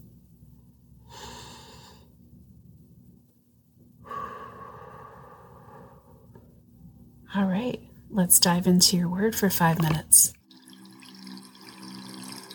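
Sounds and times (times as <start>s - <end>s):
faint steady hum: 0.0s - 12.5s
slow deep breath during guided journaling: 1.0s - 2.1s, 4.0s - 6.5s
speech: 7.3s - 10.4s.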